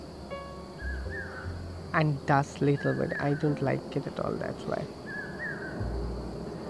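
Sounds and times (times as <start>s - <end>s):
low rumble: 0.0s - 2.6s, 4.1s - 6.6s
bird singing a short thin whistled phrase: 0.0s - 6.6s
steady hiss: 0.0s - 6.6s
speech: 2.0s - 5.0s.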